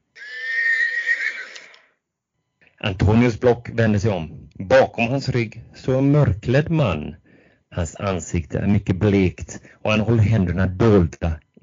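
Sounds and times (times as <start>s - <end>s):
horse whinnying: 0.1s - 1.9s
speech: 2.8s - 11.6s.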